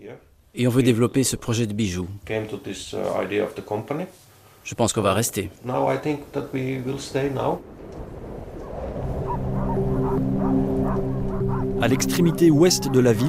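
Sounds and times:
speech: 0:00.1 - 0:08.2, 0:11.8 - 0:13.2
chorus of many sled dogs barking, yipping and howling: 0:08.6 - 0:13.2.

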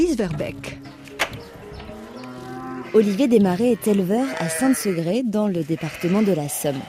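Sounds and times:
speech: 0:00.0 - 0:00.9, 0:02.9 - 0:06.8
Boulonnais sheep bleating on an organic farm: 0:02.4 - 0:06.8.

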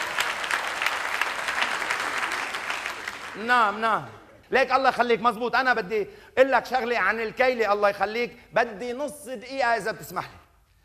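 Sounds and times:
crowd of Lebanese people applauding outside below a house: 0:00.0 - 0:04.2
speech: 0:03.4 - 0:10.4.

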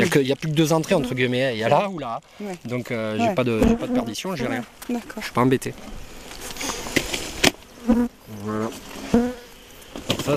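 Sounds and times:
speech: 0:00.1 - 0:06.6, 0:07.9 - 0:09.0, 0:10.2 - 0:10.3
bees buzzing around beehives beside organic farm fields: 0:03.2 - 0:04.7, 0:06.0 - 0:10.0.

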